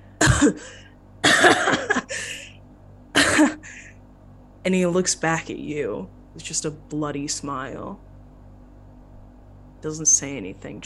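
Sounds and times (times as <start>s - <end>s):
man coughing in harsh bursts: 0.2s - 2.5s, 3.2s - 3.9s
speech: 0.4s - 2.4s, 4.6s - 8.1s, 9.8s - 10.8s.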